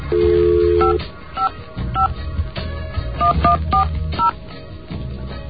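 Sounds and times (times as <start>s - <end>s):
touch-tone dialing on a phone line through an office PBX: 0.1s - 2.1s, 3.2s - 4.3s.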